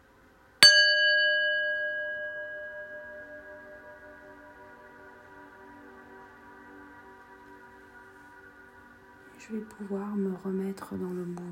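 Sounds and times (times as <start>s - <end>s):
gong struck and ringing out: 0.6s - 5.2s
speech: 9.4s - 11.4s.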